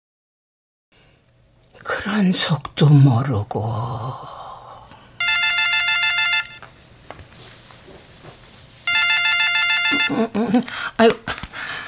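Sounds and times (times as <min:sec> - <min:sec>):
speech: 0:02.1 - 0:04.4, 0:10.1 - 0:11.7
telephone ringing with electronic trilling: 0:05.2 - 0:06.7, 0:08.8 - 0:10.4.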